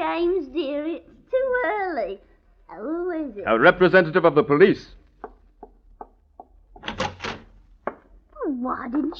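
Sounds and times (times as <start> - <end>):
speech: 0.1 - 1.1, 2.0 - 5.0, 8.6 - 9.1
wooden door rattling: 6.0 - 8.1
door latch or bolt clicks: 6.8 - 8.0.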